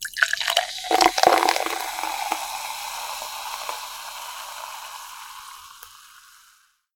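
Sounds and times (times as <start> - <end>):
liquid pouring: 0.0 - 6.7.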